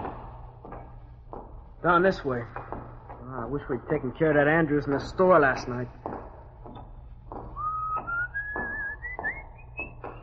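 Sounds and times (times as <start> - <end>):
speech: 1.8 - 2.7, 3.3 - 6.0
person whistling a rising tone down the hall of a building: 7.6 - 10.2.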